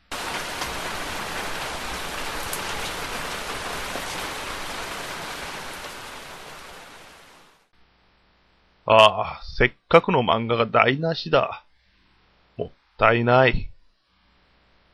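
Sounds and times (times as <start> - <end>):
steady rain pouring down: 0.0 - 7.7
speech: 8.9 - 11.6, 12.6 - 13.7.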